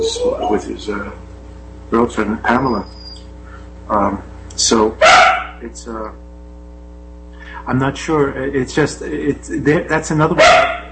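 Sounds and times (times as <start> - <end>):
speech: 0.0 - 1.3, 1.9 - 3.0, 3.9 - 6.2, 7.6 - 10.8
dog barking: 5.0 - 5.6, 10.4 - 10.8.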